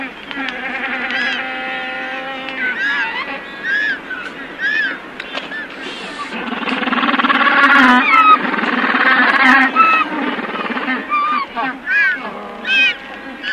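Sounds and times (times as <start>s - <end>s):
Magellanic penguin calling: 0.0s - 13.5s.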